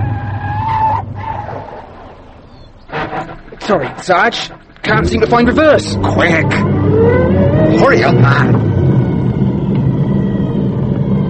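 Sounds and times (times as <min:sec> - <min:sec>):
car tire squealing while skidding to a halt: 0:00.0 - 0:10.5
low car engine rumble: 0:00.0 - 0:11.2
speech: 0:03.7 - 0:07.2, 0:07.8 - 0:08.8.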